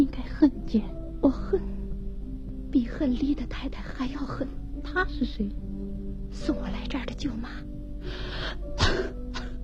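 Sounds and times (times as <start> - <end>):
speech: 0.0 - 1.8, 2.7 - 5.7, 6.3 - 9.0
person coughing: 8.8 - 9.5.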